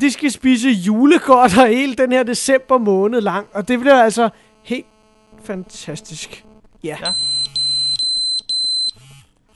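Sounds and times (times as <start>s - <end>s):
speech: 0.0s - 7.3s
low steady buzz: 0.1s - 9.5s
phone message notification alert beeps: 7.0s - 9.0s.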